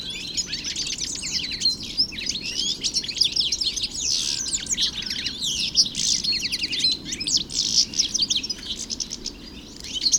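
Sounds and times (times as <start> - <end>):
European goldfinch song in a park: 0.0 - 10.1.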